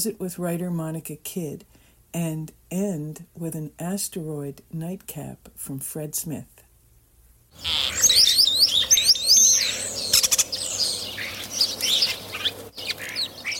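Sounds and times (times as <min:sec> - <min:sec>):
speech: 0:00.0 - 0:06.6, 0:07.6 - 0:08.1
European starling singing a jumbled medley of whistles, slurs, clicks and rattles: 0:07.6 - 0:13.5.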